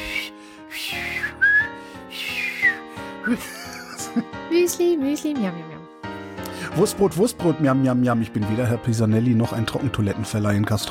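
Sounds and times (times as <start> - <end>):
person whistling a short melodic tune: 0.0 - 3.3
laughter: 3.2 - 4.3
speech: 3.3 - 3.6, 4.2 - 6.0, 6.8 - 10.8.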